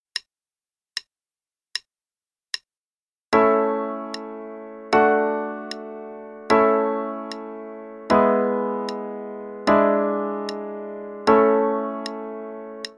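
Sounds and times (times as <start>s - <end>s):
A major chord progression with legato pedal: 3.4s - 12.9s.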